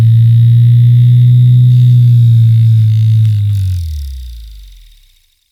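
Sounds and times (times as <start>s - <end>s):
industrial servo motor spinning up and down: 0.1s - 4.8s.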